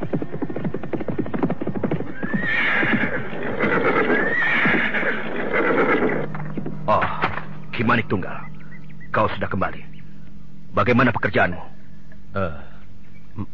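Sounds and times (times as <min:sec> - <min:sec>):
rhythmic horse hoofbeats clopping over ground: 0:00.0 - 0:06.8
horse whinnying loud and rising: 0:02.0 - 0:06.3
speech: 0:07.8 - 0:08.5, 0:09.2 - 0:09.9, 0:10.8 - 0:11.7, 0:12.4 - 0:12.7, 0:13.4 - 0:13.5.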